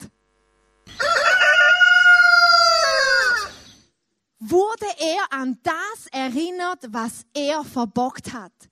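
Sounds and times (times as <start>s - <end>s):
rooster crowing: 0.9s - 3.7s
speech: 5.4s - 8.7s.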